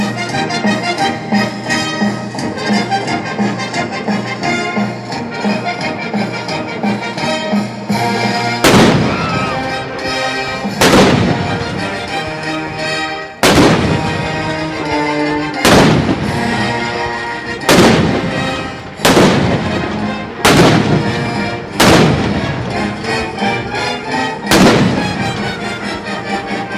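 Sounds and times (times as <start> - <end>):
full orchestral celebration music: 0.0 - 26.7
cannon blasts: 8.6 - 9.6, 10.7 - 11.8, 13.4 - 14.5, 15.6 - 16.6, 17.6 - 22.8, 24.4 - 25.5.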